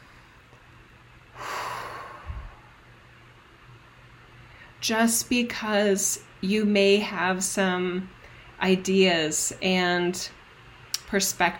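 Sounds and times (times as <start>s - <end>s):
deep breath drawn in through the nose and mouth: 1.3s - 2.8s
short low puff of air: 1.4s - 2.8s
speech: 4.8s - 10.4s, 11.1s - 11.5s.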